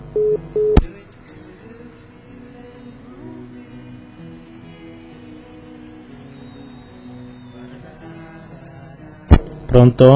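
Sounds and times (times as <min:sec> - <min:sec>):
telephone ringing tone: 0:00.2 - 0:00.8, 0:08.6 - 0:09.4.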